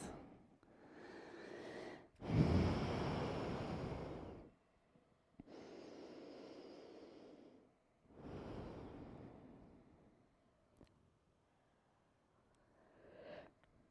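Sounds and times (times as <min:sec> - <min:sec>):
group of people breathing in unison during exercise: 0:00.1 - 0:04.6, 0:05.4 - 0:10.2, 0:12.6 - 0:13.6.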